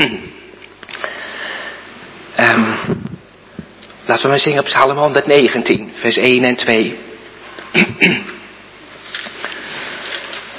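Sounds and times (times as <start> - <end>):
speech: 0.0 - 0.3, 4.1 - 7.1, 7.7 - 8.3
short harsh cough: 0.0 - 0.5, 7.7 - 8.5.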